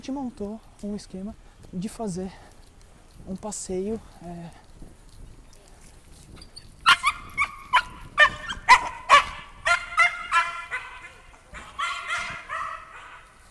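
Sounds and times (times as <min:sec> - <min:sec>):
speech: 0:00.0 - 0:02.5, 0:03.2 - 0:04.6
dog whining whimper: 0:06.4 - 0:10.9
dog yapping during a walk on a rural property: 0:06.4 - 0:13.4.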